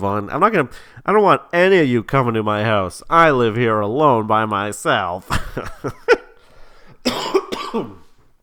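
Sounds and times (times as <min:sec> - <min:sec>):
speech: 0:00.0 - 0:06.1, 0:07.7 - 0:08.0
heavy breathing: 0:00.7 - 0:01.1, 0:06.3 - 0:07.1
person coughing: 0:07.0 - 0:08.2.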